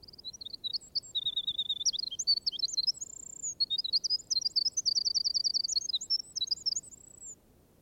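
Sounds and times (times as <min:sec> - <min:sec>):
small songbird singing in woods: 0:00.0 - 0:07.4.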